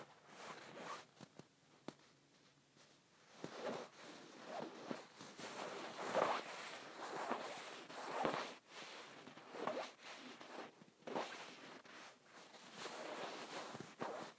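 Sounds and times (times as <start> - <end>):
faint steady hiss: 0.0 - 14.3
fingers scratching across a pillow: 3.3 - 14.3.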